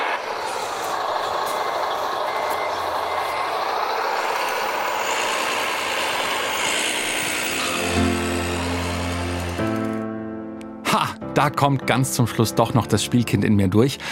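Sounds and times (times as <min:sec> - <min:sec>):
small remote-controlled model truck electric motor hum: 0:00.0 - 0:10.2
speech: 0:11.4 - 0:14.1.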